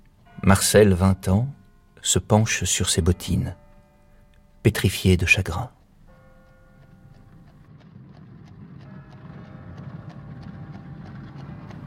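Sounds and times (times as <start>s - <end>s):
speech: 0.5s - 3.6s, 4.6s - 5.8s
horse hooves clip-clopping as a horse-drawn carriage moves at dusk: 5.8s - 11.8s.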